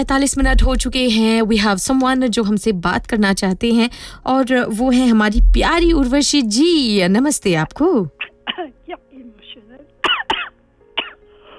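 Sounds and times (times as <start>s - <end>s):
speech: 0.0s - 8.7s
person coughing in harsh hacking fits: 8.2s - 11.2s.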